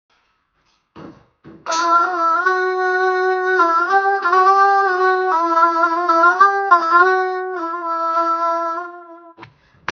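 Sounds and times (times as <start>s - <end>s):
raqs sharqi belly dance music: 1.6s - 9.4s.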